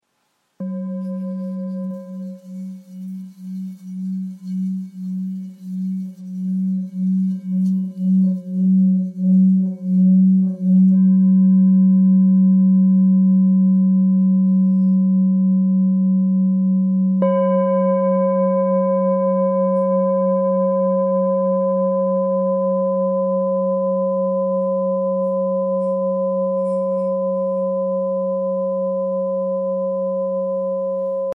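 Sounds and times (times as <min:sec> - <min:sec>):
thick bowl in F sharp: 0:00.6 - 0:31.3.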